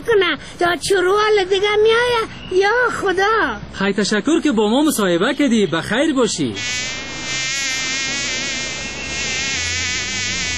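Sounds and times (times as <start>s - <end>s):
speech: 0.1s - 7.4s
dense buzzing of flies: 6.6s - 10.5s.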